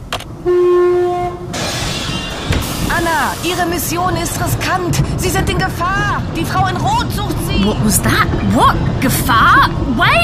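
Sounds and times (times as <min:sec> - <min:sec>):
ghost train cars rumbling along tracks departing in Berlin: 0:00.0 - 0:10.2
ghost train horn blast in Berlin: 0:00.4 - 0:01.6
speech: 0:03.1 - 0:10.2.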